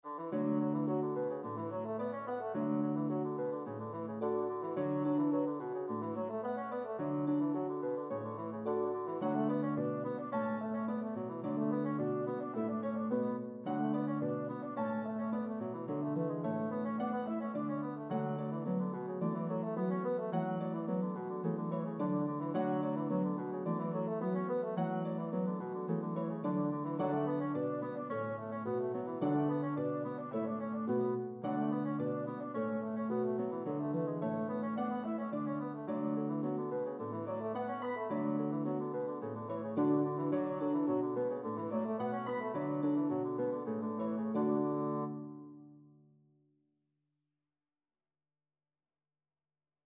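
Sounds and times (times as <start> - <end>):
bassoon playing a reel in a duet with harp: 0.0 - 45.4
harp playing a reel in a duet with bassoon: 0.0 - 45.8.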